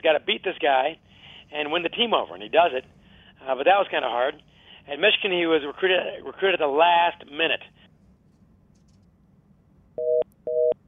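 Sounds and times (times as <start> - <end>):
speech: 0.0 - 7.8
telephone line tone after a dropped call: 10.0 - 10.8.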